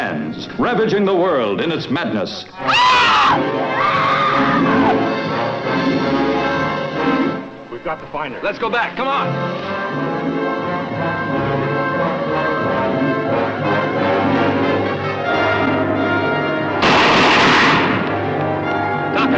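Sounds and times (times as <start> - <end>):
sustained film score music: 0.0 - 19.3
speech: 0.3 - 5.0, 7.8 - 10.1
loud noisy burst: 16.8 - 18.1
rapid gunshots fired at a monster in a film: 16.8 - 18.1.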